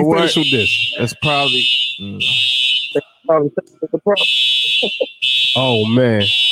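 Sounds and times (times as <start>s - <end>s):
speech: 0.0s - 6.4s
building fire alarm ringing: 0.1s - 3.2s, 4.2s - 6.5s.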